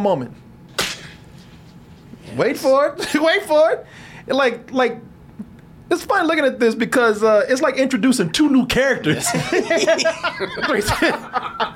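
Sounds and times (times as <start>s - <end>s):
speech: 0.0s - 0.4s, 2.3s - 5.1s, 5.9s - 11.7s
sharp slap: 0.7s - 1.2s
laughter: 9.1s - 11.7s.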